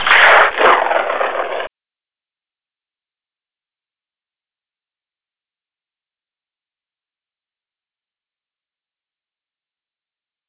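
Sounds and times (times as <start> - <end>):
car crash: 0.0 - 1.7.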